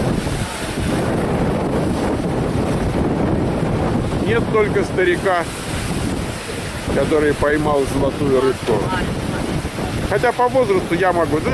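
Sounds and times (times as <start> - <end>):
rough surf crashing on the California coast during a storm: 0.0 - 11.5
strong storm wind buffeting the microphone on the California coast: 0.0 - 11.5
speech: 4.3 - 5.6, 6.9 - 9.2, 10.1 - 11.5.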